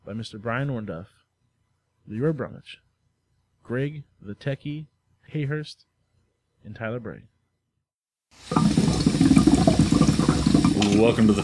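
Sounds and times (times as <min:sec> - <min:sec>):
speech: 0:00.1 - 0:01.2, 0:02.1 - 0:02.8, 0:03.7 - 0:05.9, 0:06.6 - 0:07.3, 0:10.8 - 0:11.4
water bubbling in a hookah: 0:08.4 - 0:11.4.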